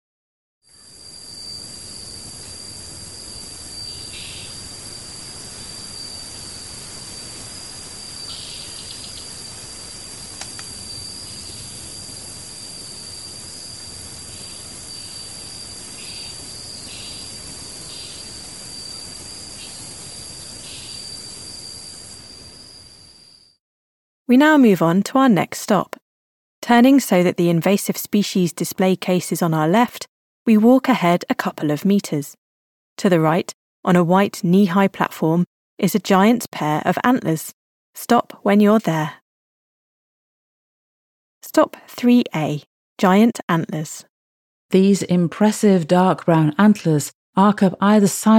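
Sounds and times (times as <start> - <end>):
steady hiss of noise: 0.8 - 23.4
frogs calling: 3.3 - 12.1, 14.2 - 21.5
speech: 24.3 - 25.9, 26.6 - 32.4, 33.0 - 39.2, 41.5 - 44.1, 44.7 - 48.3.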